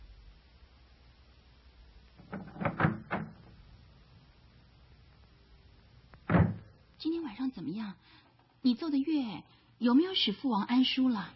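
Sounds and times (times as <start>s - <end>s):
door being opened: 2.2s - 3.6s, 6.2s - 6.8s
speech: 7.0s - 11.3s.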